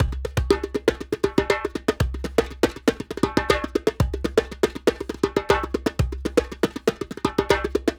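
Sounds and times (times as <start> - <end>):
djembe drum loop: 0.0 - 7.9.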